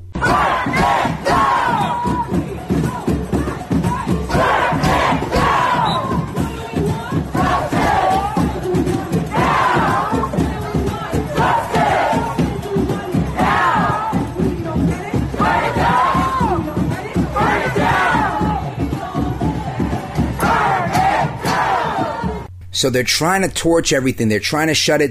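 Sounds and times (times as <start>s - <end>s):
large crowd chanting: 0.2s - 22.5s
speech: 22.8s - 25.1s.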